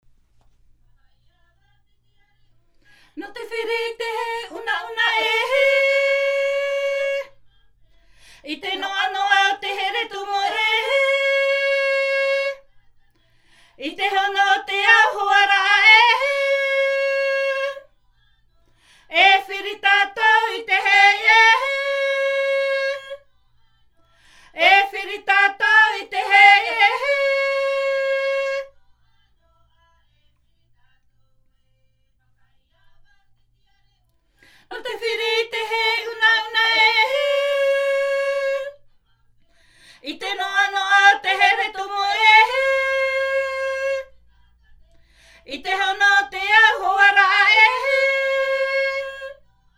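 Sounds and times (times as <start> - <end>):
himene tarava choral singing from Tahiti: 3.1 - 17.9, 18.7 - 23.3, 23.9 - 28.9, 34.4 - 38.9, 40.0 - 49.7.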